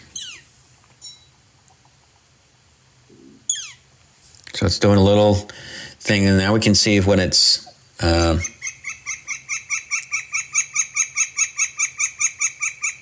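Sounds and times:
Northern flicker squealing calls: 0:00.0 - 0:01.2, 0:03.3 - 0:03.9, 0:08.0 - 0:13.0
low steady hum: 0:00.0 - 0:13.0
speech: 0:04.6 - 0:08.5.

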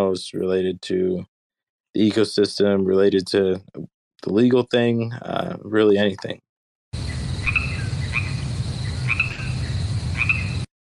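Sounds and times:
speech: 0:00.0 - 0:01.3, 0:02.0 - 0:06.4
crickets chirping: 0:07.0 - 0:10.7.

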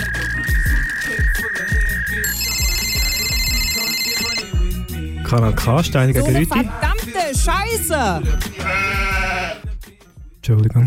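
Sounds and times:
electronic phone ringing: 0:00.0 - 0:05.1
hip-hop music with thumping bass: 0:00.0 - 0:10.8
speech: 0:05.3 - 0:08.8, 0:10.4 - 0:10.8.

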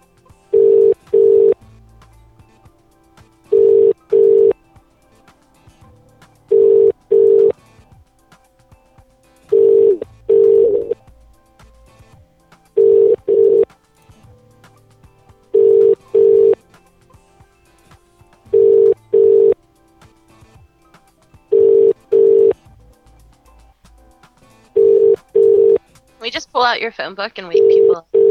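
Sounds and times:
telephone call tones of short steady mid-pitched beeps: 0:00.5 - 0:01.6, 0:03.5 - 0:04.6, 0:06.5 - 0:07.6, 0:09.5 - 0:11.0, 0:12.8 - 0:13.7, 0:15.6 - 0:16.6, 0:18.5 - 0:19.6, 0:21.5 - 0:22.6, 0:24.8 - 0:25.8, 0:27.6 - 0:28.2
speech: 0:26.6 - 0:28.2.

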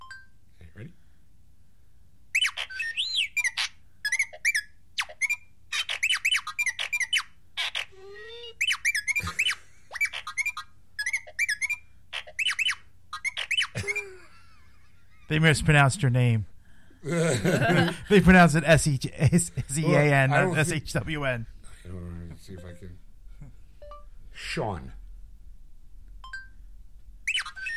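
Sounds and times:
speech: 0:00.8 - 0:01.0, 0:15.3 - 0:23.0, 0:24.5 - 0:25.0
robot droid beeping and whistling: 0:02.4 - 0:07.9, 0:08.6 - 0:13.8, 0:27.3 - 0:27.7
laughter: 0:13.8 - 0:16.3, 0:17.0 - 0:21.0.

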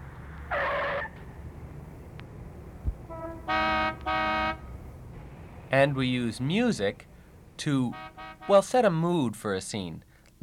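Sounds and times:
city traffic low rumble: 0:00.0 - 0:10.4
car horn honking in city traffic: 0:02.9 - 0:09.0
speech: 0:05.7 - 0:10.4.

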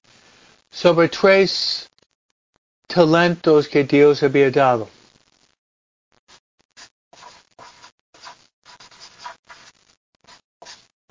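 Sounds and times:
speech: 0:00.8 - 0:01.9, 0:02.9 - 0:05.0
scratchy strokes of a writing tool across a surface: 0:06.8 - 0:10.9.

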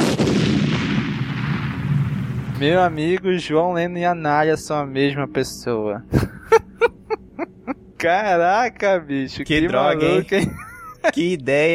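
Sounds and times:
explosion: 0:00.0 - 0:03.1
speech: 0:02.6 - 0:06.4, 0:08.0 - 0:11.7
laughter: 0:06.1 - 0:07.8, 0:09.8 - 0:11.4.

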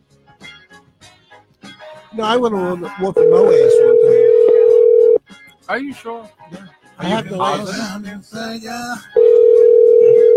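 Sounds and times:
speech: 0:02.1 - 0:04.3, 0:05.7 - 0:09.2
steady electronic ringback tone from a phone line on an outgoing call: 0:03.2 - 0:05.2, 0:09.2 - 0:10.3.

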